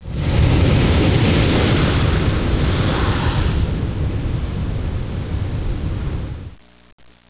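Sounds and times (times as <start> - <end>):
rushing water: 0.0 - 5.2.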